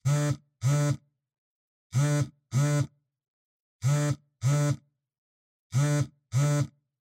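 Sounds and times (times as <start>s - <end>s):
cell phone vibrating on cloth: 0.0s - 1.1s, 1.9s - 2.9s, 3.8s - 4.9s, 5.7s - 6.8s.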